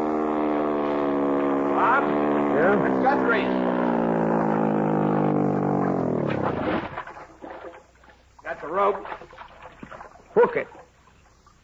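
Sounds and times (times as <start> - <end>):
motorboat engine throttling back to pull up alongside a docked boat: 0.0 - 11.6
speech: 3.0 - 3.8, 8.7 - 9.3, 10.4 - 10.8.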